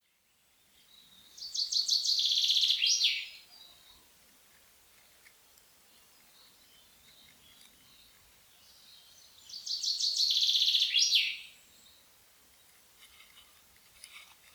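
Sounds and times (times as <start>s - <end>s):
common chaffinch singing: 0.8s - 4.1s, 5.5s - 12.8s.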